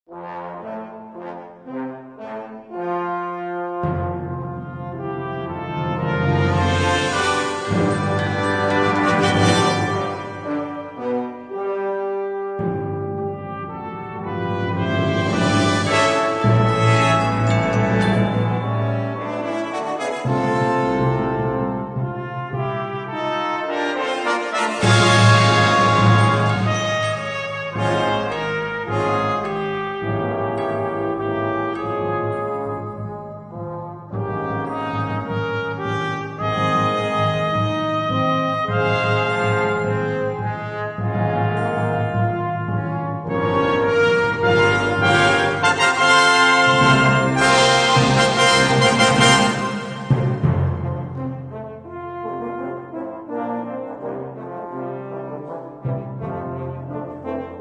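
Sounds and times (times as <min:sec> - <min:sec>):
brass choir playing: 0:00.1 - 0:57.5.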